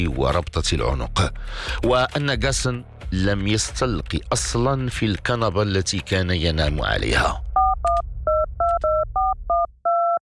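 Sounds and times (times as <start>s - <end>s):
speech: 0.0s - 7.4s
telephone dialing a call with two-tone keypad beeps: 7.6s - 10.2s.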